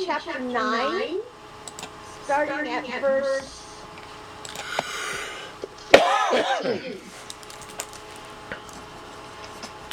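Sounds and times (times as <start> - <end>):
speech: 0.0 - 1.4, 2.3 - 3.6, 6.3 - 7.1
person coughing: 5.9 - 7.2.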